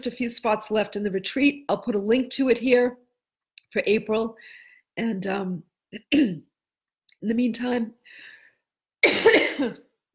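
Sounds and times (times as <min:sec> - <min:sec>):
speech: 0:00.0 - 0:03.0, 0:03.7 - 0:06.5, 0:07.2 - 0:08.3, 0:09.0 - 0:09.8
single short harsh cough: 0:06.0 - 0:06.5, 0:09.0 - 0:09.9.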